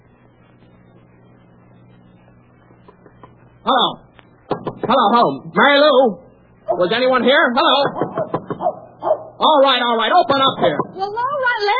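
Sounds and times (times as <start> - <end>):
speech: 3.6 - 4.0, 4.9 - 8.0, 9.4 - 11.7
dog barking: 8.5 - 9.4.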